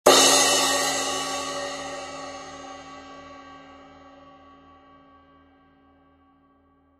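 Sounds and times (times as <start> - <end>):
16in rock crash cymbal: 0.1 - 4.0.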